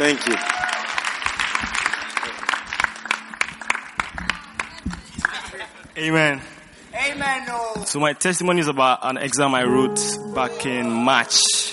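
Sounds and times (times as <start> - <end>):
crowd clapping to welcome a speaker: 0.0 - 5.8
speech: 0.1 - 0.6, 6.0 - 6.5, 7.1 - 11.6.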